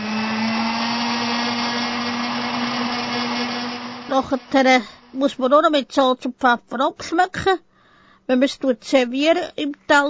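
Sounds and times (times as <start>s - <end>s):
hand blender whirring through pumpkin soup: 0.0s - 5.2s
speech: 4.1s - 7.7s, 8.3s - 10.0s.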